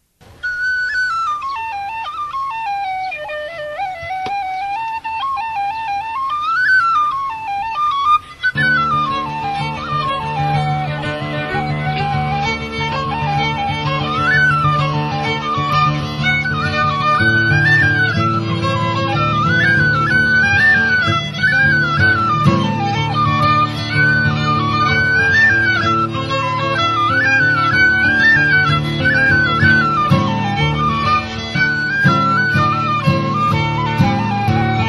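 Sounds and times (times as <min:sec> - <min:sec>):
fiddle: 0:00.0 - 0:34.8
whistle: 0:00.3 - 0:11.0, 0:11.6 - 0:34.8
mandolin: 0:00.3 - 0:34.8.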